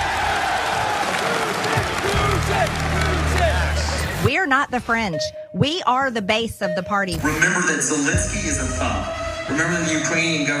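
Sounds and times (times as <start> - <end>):
audience clapping: 0.0 - 4.3
scattered voices and cheers in an audience: 0.0 - 4.3
speech: 4.2 - 10.5.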